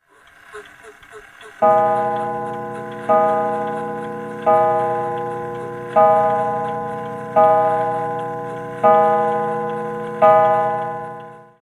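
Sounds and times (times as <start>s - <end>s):
American mantelpiece clock chimes ringing: 1.6s - 11.6s.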